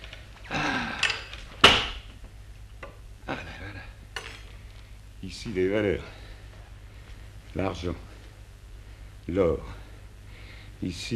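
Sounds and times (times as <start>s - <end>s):
door being forced open, staged sound effect: 1.0s - 2.2s
speech: 5.3s - 6.2s, 7.6s - 8.1s, 9.3s - 9.8s, 10.8s - 11.1s.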